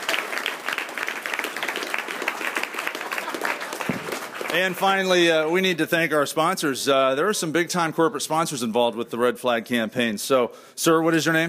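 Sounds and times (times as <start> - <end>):
crowd applauding: 0.0 - 5.5
speech: 4.5 - 11.4.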